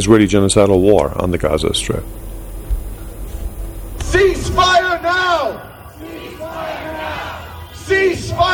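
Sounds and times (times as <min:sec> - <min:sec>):
speech: 0:00.0 - 0:02.3, 0:04.1 - 0:06.8, 0:07.9 - 0:08.5
crowd of protesters shouting slogans in unison: 0:04.0 - 0:08.5.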